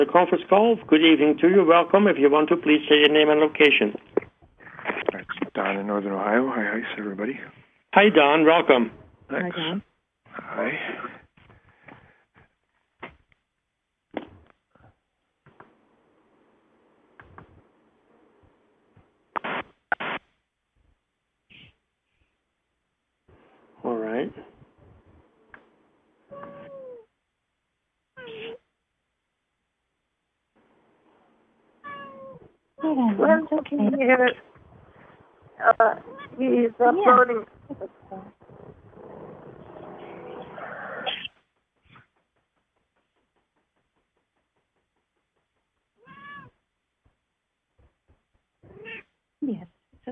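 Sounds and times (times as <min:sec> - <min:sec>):
speech: 0:00.0 - 0:04.2, 0:05.6 - 0:11.2, 0:32.8 - 0:34.5, 0:35.6 - 0:38.4, 0:49.4 - 0:50.1
cat meowing and yowling on a conference call: 0:26.3 - 0:27.1, 0:28.2 - 0:28.6, 0:31.8 - 0:33.0, 0:35.8 - 0:36.5, 0:46.0 - 0:46.6, 0:48.6 - 0:49.1.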